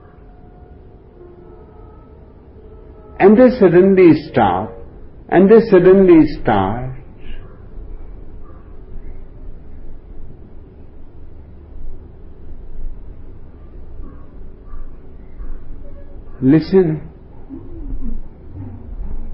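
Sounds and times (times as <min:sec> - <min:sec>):
low steady rumble: 0:00.0 - 0:19.3
speech: 0:03.2 - 0:07.0, 0:16.4 - 0:17.1
crow cawing: 0:14.0 - 0:16.4.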